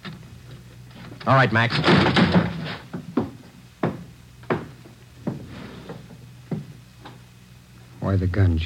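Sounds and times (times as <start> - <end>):
speech: 1.2 - 2.2, 8.1 - 8.6
door being kicked down: 1.7 - 4.0.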